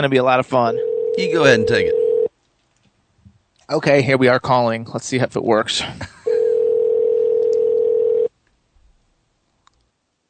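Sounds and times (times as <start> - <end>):
speech: 0.0 - 2.0, 3.7 - 6.2
telephone call ringing tone: 0.6 - 2.3, 6.3 - 8.3.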